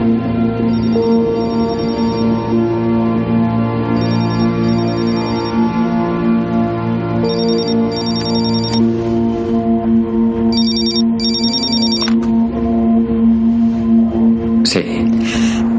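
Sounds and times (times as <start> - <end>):
steady sustained musical drone: 0.0 - 15.7
telephone ringing: 0.7 - 2.7, 4.0 - 5.8, 7.2 - 8.9, 10.5 - 12.2.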